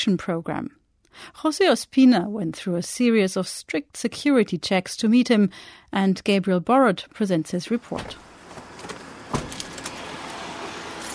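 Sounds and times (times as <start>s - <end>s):
speech: 0.0s - 8.3s
armored sport utility vehicle road rumble and hiss in city traffic: 8.0s - 11.1s.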